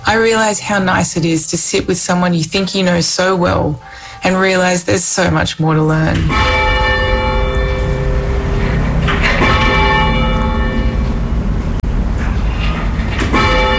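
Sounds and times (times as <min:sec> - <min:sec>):
speech: 0:00.1 - 0:06.8
church bells pealing: 0:06.0 - 0:12.1, 0:12.9 - 0:13.7.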